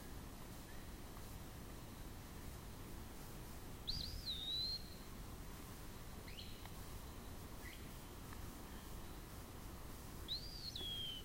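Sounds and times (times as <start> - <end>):
low background hiss: 0.0 - 11.2
Eastern wood-pewee song: 3.9 - 5.0, 10.3 - 11.2.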